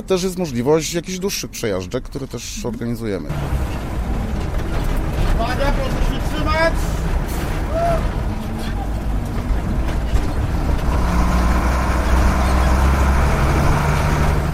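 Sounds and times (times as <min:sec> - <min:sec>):
speech: 0:00.0 - 0:03.9, 0:05.4 - 0:07.1, 0:07.8 - 0:08.2
rumbling, clattering and rattling of old car bouncing over rough ground: 0:02.5 - 0:14.5
old car carrying tourists roaring and straining over rough ground: 0:03.3 - 0:14.5.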